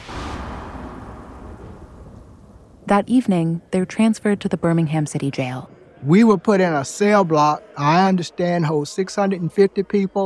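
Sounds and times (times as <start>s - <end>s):
deep thunder rumbling: 0.0s - 4.0s
speech: 2.9s - 10.2s.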